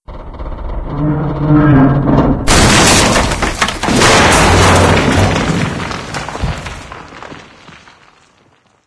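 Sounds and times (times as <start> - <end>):
debris falling: 1.9 - 8.8.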